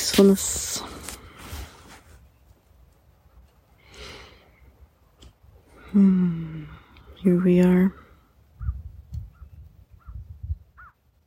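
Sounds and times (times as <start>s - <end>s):
speech: 0.2s - 0.8s, 5.9s - 8.0s
birds calling at dawn: 7.1s - 11.2s
crow cawing: 10.8s - 11.0s.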